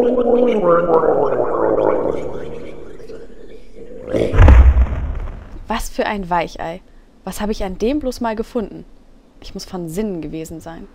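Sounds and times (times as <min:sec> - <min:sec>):
speech: 0:00.0 - 0:01.3, 0:05.7 - 0:10.9
murloc creature from a video game gurgling as it falls: 0:03.8 - 0:04.6
heavy low thud: 0:04.2 - 0:05.7.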